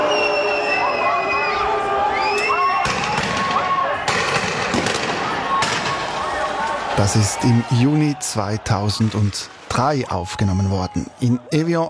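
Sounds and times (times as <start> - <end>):
riot crowd shouting and whistling after a demonstration in Geneva: 0.0 - 11.8
sharp bangs of police rubber bullets and tear gas: 2.8 - 6.5
speech: 7.0 - 11.8.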